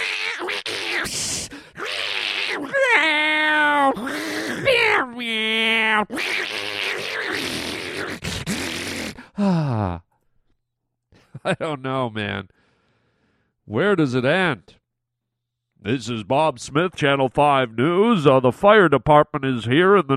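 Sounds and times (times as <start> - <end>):
cats screeching harshly: 0.0 - 9.2
cats yowling and caterwauling at night: 1.8 - 8.2
speech: 11.4 - 12.6, 13.7 - 14.8, 15.8 - 20.1.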